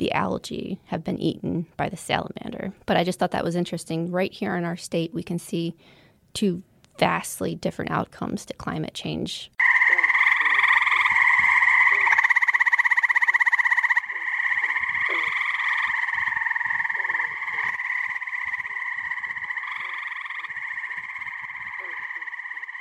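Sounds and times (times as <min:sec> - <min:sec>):
speech: 0:00.0 - 0:09.7
dense chorus of frogs croaking and trilling at a pond: 0:09.6 - 0:22.7.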